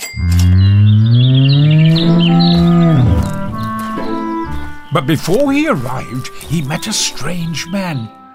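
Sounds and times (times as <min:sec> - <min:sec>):
cow mooing: 0:00.2 - 0:04.9
speech: 0:04.9 - 0:08.2.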